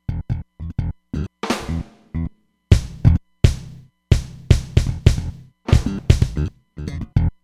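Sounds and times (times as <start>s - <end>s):
sampled drums: 1.4s - 6.5s.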